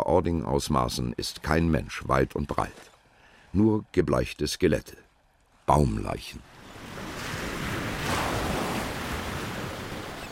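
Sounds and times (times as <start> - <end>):
speech: 0.0 - 2.9, 3.6 - 5.0, 5.7 - 6.5
ocean surf breaking on a beach: 6.4 - 10.3.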